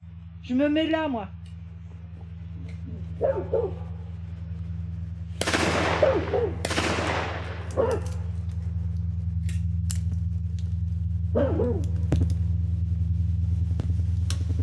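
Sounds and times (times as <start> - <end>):
steady low mechanical hum: 0.0 - 14.6
speech: 0.4 - 1.4, 3.2 - 3.8, 5.6 - 7.0, 7.8 - 8.2, 11.3 - 12.2
dog barking: 2.9 - 4.0, 6.0 - 6.6, 7.7 - 8.3, 11.4 - 12.0
gunshot blasts with rough echo: 5.4 - 8.1.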